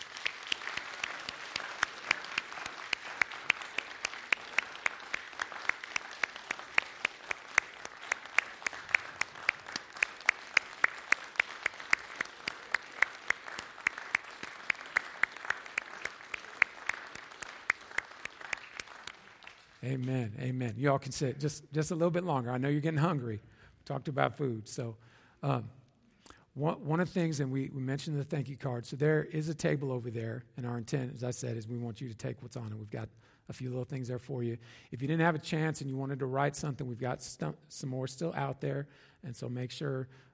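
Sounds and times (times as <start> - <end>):
crowd applauding: 0.0 - 20.1
speech: 19.8 - 25.8, 26.6 - 40.3.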